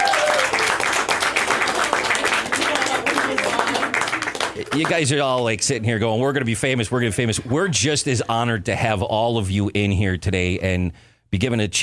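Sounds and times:
girls hockey team clapping for their coaches: 0:00.0 - 0:05.6
speech: 0:04.7 - 0:11.8.

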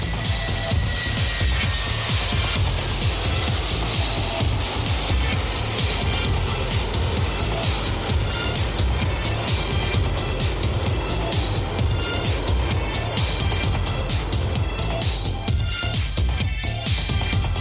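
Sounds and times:
airplane engine roar while waiting to depart: 0:00.0 - 0:17.5.

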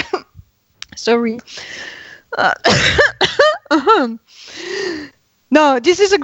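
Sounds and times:
speech: 0:01.0 - 0:04.6, 0:05.5 - 0:06.2
breathy inhale: 0:01.5 - 0:02.3, 0:04.3 - 0:05.2
loud raspy voiced coughs: 0:02.6 - 0:03.6.

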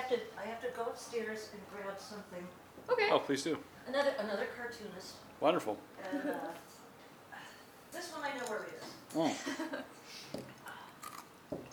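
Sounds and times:
soft hiss: 0:00.0 - 0:11.7
speech: 0:00.1 - 0:06.8, 0:07.9 - 0:10.5
chewing ice: 0:10.6 - 0:11.7.

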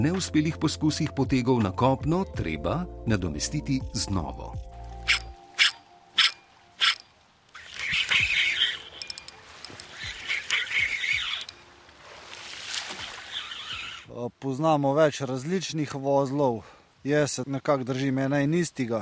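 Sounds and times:
speech: 0:00.0 - 0:04.6, 0:14.4 - 0:19.0
fishing reel clicks and scrapes freeing a snagged lure: 0:05.0 - 0:11.6
sharp zips opening a fishing clip: 0:05.0 - 0:11.6, 0:13.2 - 0:14.1.

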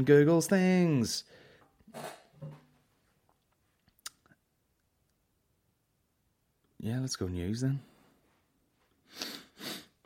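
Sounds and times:
speech: 0:00.0 - 0:02.6, 0:06.8 - 0:07.9
quick breathy sniffs: 0:09.0 - 0:10.0.

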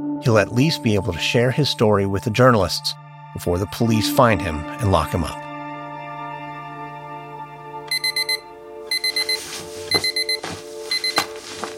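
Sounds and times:
speech: 0:00.2 - 0:05.4
electronic alarm clock beeping: 0:07.9 - 0:11.4.

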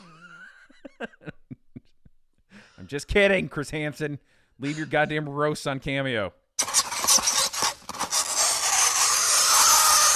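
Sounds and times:
speech: 0:02.9 - 0:06.4
fingernails scraping on a chalkboard: 0:06.6 - 0:10.1.

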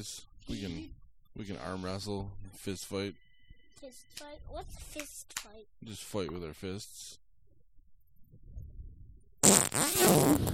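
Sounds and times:
speech: 0:00.0 - 0:03.2, 0:03.8 - 0:07.2, 0:09.4 - 0:10.5
fart noise into the microphone: 0:09.4 - 0:10.5.

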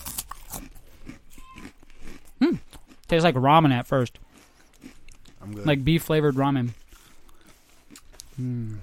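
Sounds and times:
biting and crunching jalapeño Cheetos: 0:00.0 - 0:05.8, 0:06.7 - 0:08.8
speech: 0:03.1 - 0:04.3, 0:05.5 - 0:06.8, 0:08.4 - 0:08.8.

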